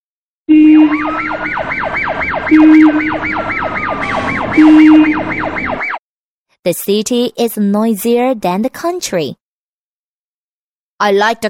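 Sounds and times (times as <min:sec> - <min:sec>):
deep horn blasts: 0:00.5 - 0:01.3, 0:04.0 - 0:05.4
loud emergency siren yelping: 0:00.5 - 0:06.0
speech: 0:00.8 - 0:03.8, 0:04.6 - 0:05.7, 0:06.6 - 0:09.4, 0:11.0 - 0:11.4.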